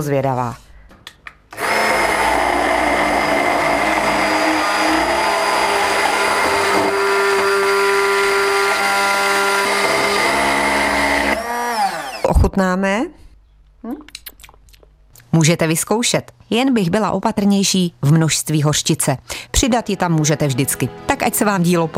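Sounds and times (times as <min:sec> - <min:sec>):
speech: 0:00.0 - 0:00.6, 0:12.6 - 0:13.2, 0:13.8 - 0:14.0, 0:15.4 - 0:21.9
handheld immersion blender whirring while making mayonnaise: 0:01.5 - 0:12.4.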